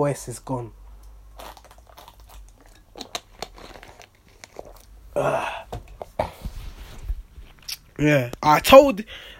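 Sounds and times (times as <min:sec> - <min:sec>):
speech: 0:00.0 - 0:00.8, 0:05.2 - 0:05.5, 0:08.0 - 0:09.3
person sipping water with slurp and swallow: 0:01.3 - 0:06.4
person exhaling a grunt: 0:05.2 - 0:05.8.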